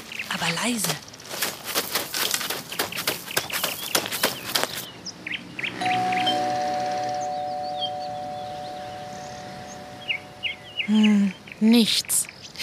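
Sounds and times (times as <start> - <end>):
birds chirping outdoors: 0.0 - 12.6
speech: 0.4 - 1.1, 10.9 - 12.2
doorbell buzzing: 5.8 - 10.7.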